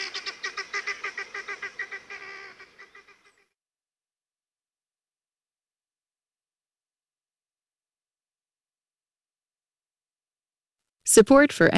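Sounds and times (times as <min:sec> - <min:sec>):
helmeted guinea fowl squawking: 0:00.0 - 0:03.4
speech: 0:11.1 - 0:11.7.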